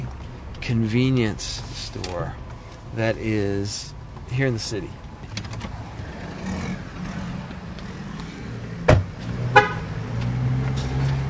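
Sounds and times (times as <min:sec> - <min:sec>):
low hum of traffic and engines at a highway convenience store: 0:00.0 - 0:11.2
speech: 0:00.6 - 0:05.0
car horn chirps as a car is locked with its keys: 0:09.5 - 0:10.0.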